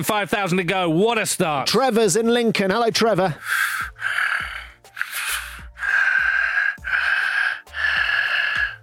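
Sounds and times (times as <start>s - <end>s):
speech: 0.0s - 4.3s
heavy rasping breathing over a phone line: 3.3s - 8.8s.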